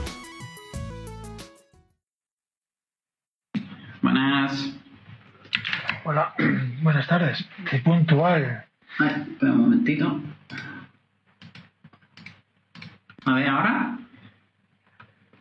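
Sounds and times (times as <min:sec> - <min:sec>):
speech: 0:04.0 - 0:04.8, 0:06.0 - 0:10.7, 0:13.3 - 0:14.0
typing on a computer keyboard: 0:11.4 - 0:13.3.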